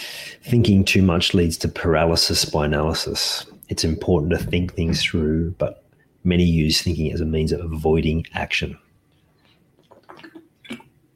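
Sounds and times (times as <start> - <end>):
speech: 0.4 - 8.8
person sipping water: 9.4 - 11.0
swallow: 9.8 - 11.0.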